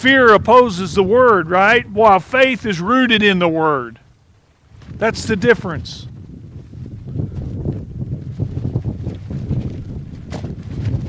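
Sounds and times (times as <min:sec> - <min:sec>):
speech: 0:00.0 - 0:04.0, 0:04.9 - 0:06.1
wind blowing hard outdoors and buffeting the microphone: 0:00.0 - 0:11.0.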